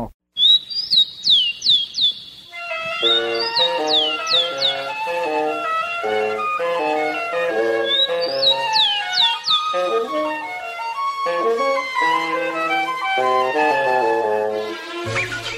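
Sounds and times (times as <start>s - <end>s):
rufous-collared sparrow tico-tico singing: 0.4s - 13.4s, 15.0s - 15.5s
instrumental melody: 2.4s - 15.5s
speech: 3.0s - 6.2s.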